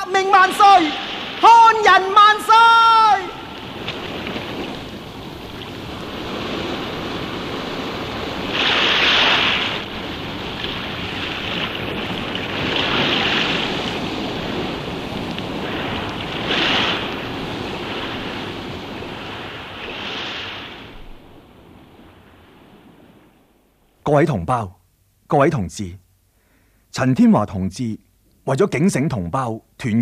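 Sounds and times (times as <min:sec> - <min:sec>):
waves crashing and hissing: 0:00.0 - 0:23.6
ocean surf rumbling: 0:00.0 - 0:24.6
speech: 0:00.1 - 0:03.3, 0:24.1 - 0:26.0, 0:26.9 - 0:30.0
wind noise blowing across the microphone: 0:03.6 - 0:23.3.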